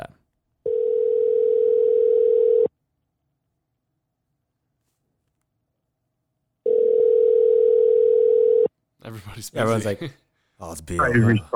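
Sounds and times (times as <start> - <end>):
outgoing phone call ringback tones: 0.7 - 2.7, 6.7 - 8.7
speech: 9.3 - 11.5.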